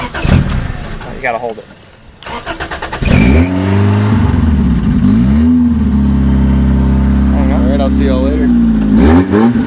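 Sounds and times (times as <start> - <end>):
old car starter cranking: 0.0 - 1.3, 2.2 - 3.5
speech: 1.2 - 2.6
old car engine revving without muffler: 3.0 - 9.6.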